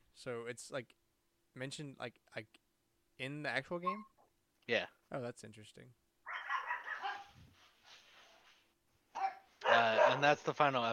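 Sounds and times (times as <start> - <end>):
speech: 0.2 - 2.6, 3.2 - 4.1, 4.7 - 6.0, 9.7 - 10.9
dogs barking, muffled and quiet: 6.3 - 7.4, 9.2 - 10.4.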